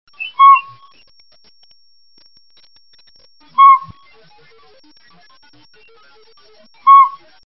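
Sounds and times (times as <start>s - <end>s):
northern pygmy owl calling: 0.1s - 0.9s, 3.6s - 4.0s, 6.9s - 7.2s.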